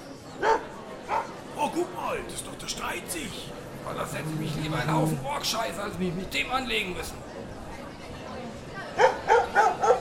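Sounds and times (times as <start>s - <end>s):
dog barking: 0.4s - 1.4s, 9.0s - 9.9s
speech: 1.8s - 7.4s.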